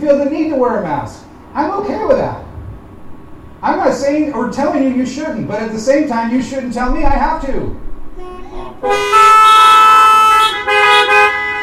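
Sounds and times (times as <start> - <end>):
speech: 0.0 - 2.5, 3.6 - 9.2
car horn honking: 8.7 - 11.6.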